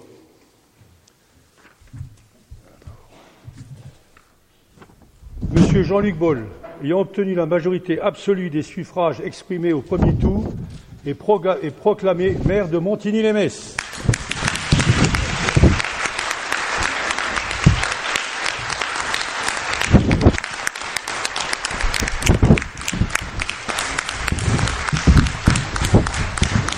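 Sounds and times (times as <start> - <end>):
speech: 5.6 - 14.0
audience applause after mayor's election: 13.8 - 26.7.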